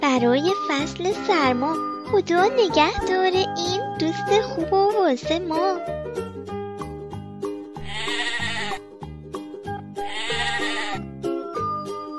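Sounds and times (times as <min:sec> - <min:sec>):
bouncy rhythmic musical backing: 0:00.0 - 0:12.1
speech: 0:00.1 - 0:06.2
sheep bleating: 0:07.8 - 0:08.8, 0:10.0 - 0:11.1.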